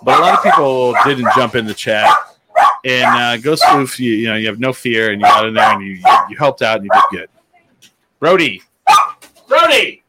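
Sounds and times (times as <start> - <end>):
speech: 0.0 - 7.4, 8.2 - 10.0
dog barking: 0.1 - 3.9, 5.2 - 7.2, 8.8 - 9.2.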